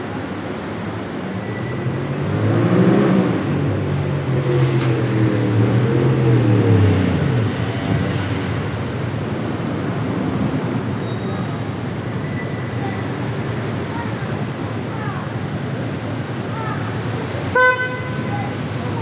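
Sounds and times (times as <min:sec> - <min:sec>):
low steady hum of traffic on a calm street in France: 0:00.0 - 0:19.0
faint voices: 0:11.0 - 0:19.0
short car horn toot: 0:17.5 - 0:18.3.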